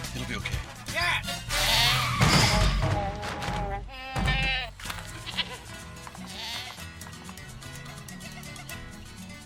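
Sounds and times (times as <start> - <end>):
speech: 0.3 - 1.3
goat bleating: 1.5 - 2.3, 2.9 - 6.9, 8.1 - 8.9.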